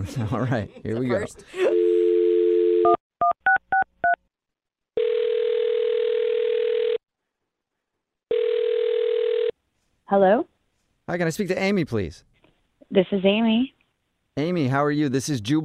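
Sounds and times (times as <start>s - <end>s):
speech: 0.0s - 1.8s, 10.1s - 10.5s, 11.1s - 12.3s, 12.9s - 13.8s, 14.4s - 15.6s
phone dial tone: 1.8s - 3.4s, 5.0s - 7.0s, 8.3s - 9.5s.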